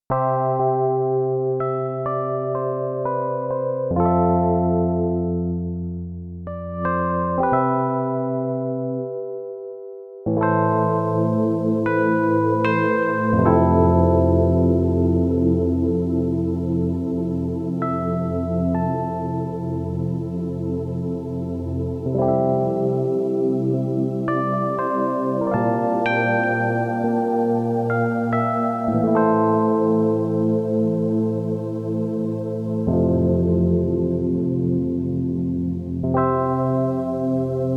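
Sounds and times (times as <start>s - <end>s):
resonant piano patch on a Korg Radias-R synthesizer: 0.1s - 37.7s.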